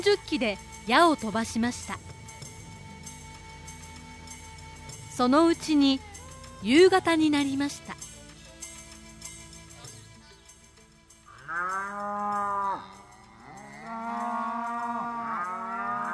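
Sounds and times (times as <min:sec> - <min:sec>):
speech: 0:00.0 - 0:02.1, 0:05.2 - 0:08.0
herd of cattle mooing: 0:11.3 - 0:16.1.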